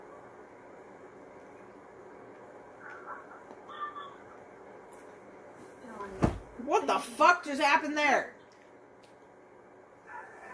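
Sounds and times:
steady hum: 0:00.0 - 0:10.5
speech: 0:06.8 - 0:08.4
dog barking: 0:10.0 - 0:10.5.

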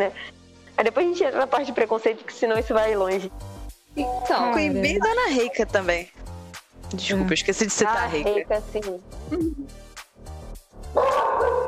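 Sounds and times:
speech: 0:00.0 - 0:06.2, 0:06.9 - 0:09.8
dog barking: 0:11.0 - 0:11.6.

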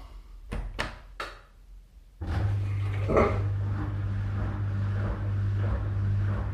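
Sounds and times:
washing machine motor hum with rushing wash: 0:02.2 - 0:06.5.

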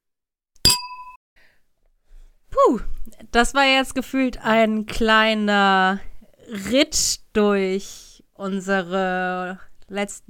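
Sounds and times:
two glasses clinking in a toast: 0:00.6 - 0:01.2
speech: 0:02.7 - 0:10.2.

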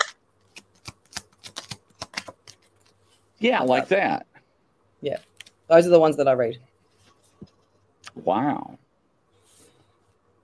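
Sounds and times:
deck of cards being shuffled: 0:00.4 - 0:03.9
speech: 0:03.4 - 0:04.3, 0:05.0 - 0:06.7, 0:08.2 - 0:08.8.

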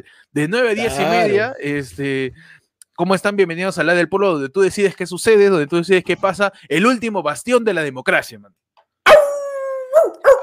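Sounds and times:
speech: 0:00.0 - 0:08.6
French bulldog barking: 0:09.0 - 0:10.4.

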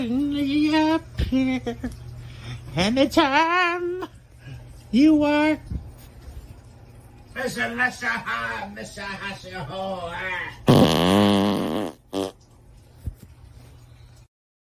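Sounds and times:
person singing short wavering wordless tune: 0:00.0 - 0:01.9, 0:02.7 - 0:04.2
speech: 0:01.0 - 0:02.0, 0:02.8 - 0:04.1, 0:04.9 - 0:05.7, 0:07.4 - 0:12.3
loud drawn-out buzzing fart: 0:10.6 - 0:12.5.

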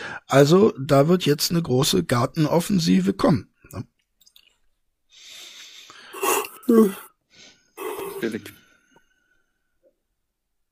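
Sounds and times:
speech: 0:00.3 - 0:03.9, 0:06.7 - 0:07.1, 0:08.2 - 0:08.6
person yawning: 0:06.1 - 0:07.2, 0:07.8 - 0:08.4.

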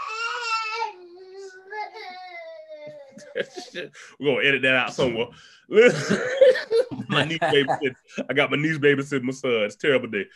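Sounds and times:
young boy crying loudly with wailing sobs and whimpering: 0:00.0 - 0:03.8
speech: 0:03.4 - 0:10.3
laughter: 0:05.8 - 0:08.0.

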